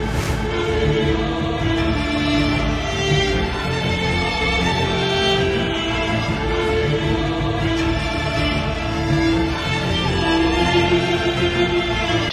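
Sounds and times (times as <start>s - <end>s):
distorted strings: 0.0s - 12.3s.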